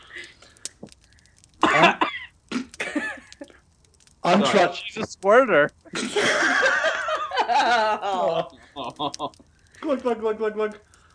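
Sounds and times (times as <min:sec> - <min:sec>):
laughter: 0:01.6 - 0:02.1, 0:05.9 - 0:09.4
woman coughing in harsh raspy fits: 0:01.6 - 0:03.0
speech: 0:04.3 - 0:06.8, 0:07.6 - 0:10.9.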